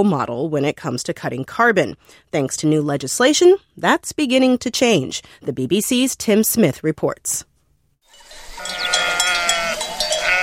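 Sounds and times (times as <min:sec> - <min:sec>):
speech: 0:00.0 - 0:07.5
flock of sheep bleating on a farm in the Spanish countryside hills: 0:08.5 - 0:10.4.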